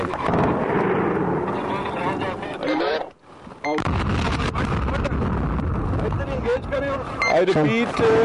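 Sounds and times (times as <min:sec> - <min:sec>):
heavy explosive device blast: 0:00.2 - 0:02.5, 0:03.8 - 0:06.6
rumbling wind-buffeted noise: 0:00.2 - 0:08.2
speech: 0:07.4 - 0:08.2.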